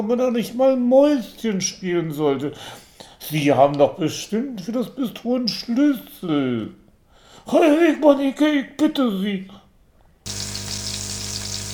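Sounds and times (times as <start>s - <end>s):
speech: 0.0s - 6.8s, 7.4s - 9.6s
low hum: 10.3s - 11.7s
meatballs sizzling as they are warmed in a frying pan: 10.3s - 11.7s.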